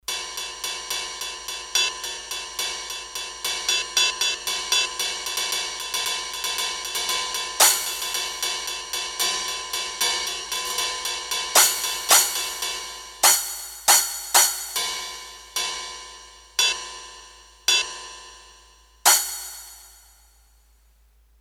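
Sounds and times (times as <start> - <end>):
cymbal on a Roland D-10: 0.1 - 10.7, 11.4 - 16.4, 19.1 - 20.4.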